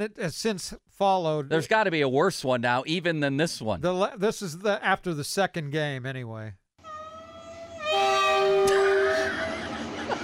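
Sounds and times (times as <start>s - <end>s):
speech: 0.0s - 6.6s
train horn blast as a radio drop sound effect: 6.9s - 9.5s
laughter: 8.7s - 10.2s.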